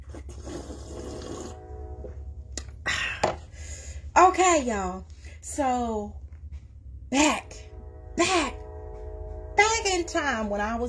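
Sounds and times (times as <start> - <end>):
slurping sip of hot tea from a cup: 0.0 - 1.6
speech: 4.2 - 6.2, 7.1 - 7.6, 8.2 - 8.6, 9.9 - 10.8.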